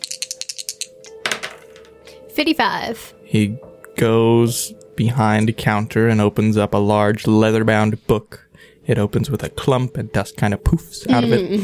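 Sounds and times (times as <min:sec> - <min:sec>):
percentile dice clattering on a hard surface: 0:00.0 - 0:01.9
speech: 0:02.4 - 0:11.6.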